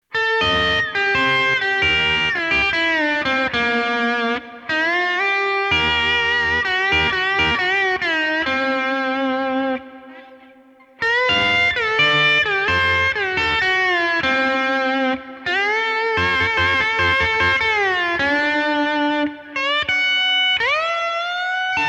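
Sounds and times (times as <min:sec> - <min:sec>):
overdriven guitar through an AXE FX 3: 0:00.0 - 0:21.8.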